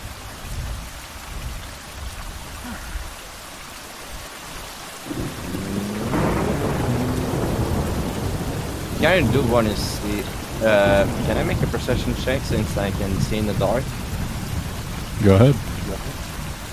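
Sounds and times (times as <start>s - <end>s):
heavy rain: 0.0s - 16.7s
deep thunder rumbling: 5.0s - 16.7s
speech: 9.0s - 14.0s, 15.2s - 16.2s.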